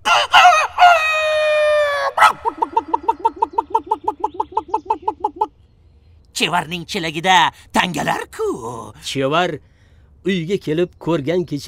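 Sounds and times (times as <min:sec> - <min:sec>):
rooster crowing: 0:00.0 - 0:04.1
rooster clucking: 0:00.0 - 0:05.6
speech: 0:06.4 - 0:11.6.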